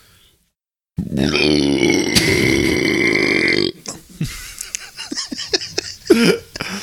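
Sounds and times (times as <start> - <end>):
long loud exaggerated burp: 1.0 - 3.9
people laughing: 4.2 - 6.8.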